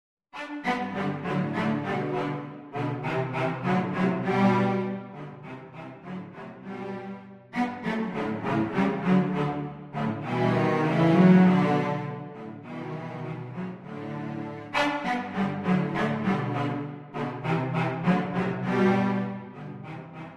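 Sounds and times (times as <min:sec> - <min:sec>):
cello trio playing: 0:00.4 - 0:20.3.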